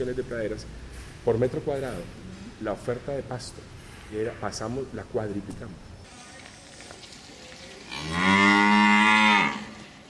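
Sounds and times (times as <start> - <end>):
speech: 0.0 - 5.9
cow mooing: 7.9 - 9.8.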